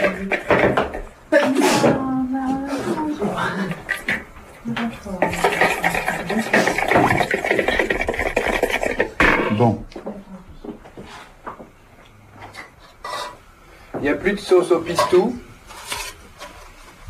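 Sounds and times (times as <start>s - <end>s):
kitchen clatter of dishes and utensils being handled and stirred while preparing a salad: 0.0s - 2.1s, 2.8s - 9.7s, 14.9s - 16.6s
people talking: 0.0s - 3.9s, 4.6s - 7.1s, 9.4s - 10.8s, 14.0s - 15.4s.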